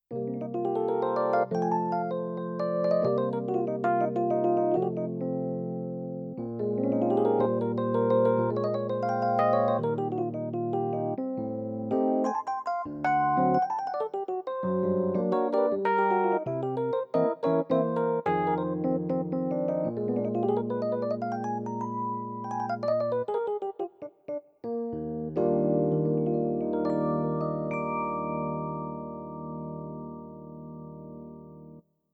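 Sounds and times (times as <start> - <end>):
electric piano: 0.0 - 31.8.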